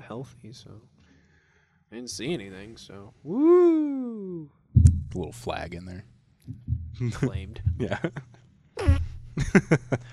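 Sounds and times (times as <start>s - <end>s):
speech: 0.1s - 1.0s, 1.9s - 10.1s
laughter: 7.0s - 10.1s
whistling squeaky fart sputtering: 8.8s - 9.2s.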